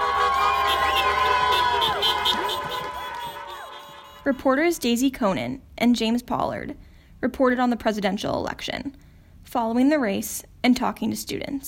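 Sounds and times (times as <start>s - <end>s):
dense crowd of residents cheering and whooping outdoors: 0.0s - 4.4s
car horn blasts outdoors: 0.0s - 4.6s
speech: 4.2s - 11.6s.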